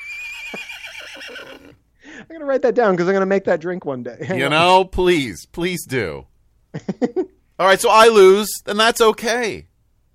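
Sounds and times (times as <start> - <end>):
high-pitched horse whinny: 0.0 - 1.8
speech: 2.3 - 10.1.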